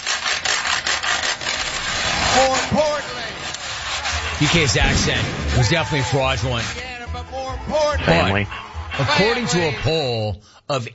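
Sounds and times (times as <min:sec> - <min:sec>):
wooden spoons scraped on a washboard: 0:00.0 - 0:05.2
speech: 0:02.4 - 0:02.9, 0:04.4 - 0:06.9, 0:07.5 - 0:10.9
laughter: 0:05.7 - 0:10.1.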